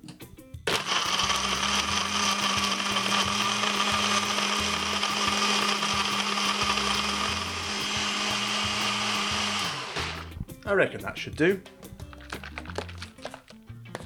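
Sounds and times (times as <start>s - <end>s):
blender blending piña colada ingredients: 0.7s - 10.4s
speech: 10.7s - 11.8s.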